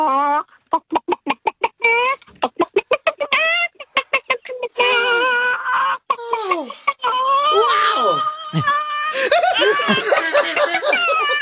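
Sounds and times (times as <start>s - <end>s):
person vocally imitating a stressed-out chicken with clucks and squawks: 0.0s - 9.2s
laughter: 8.5s - 11.4s.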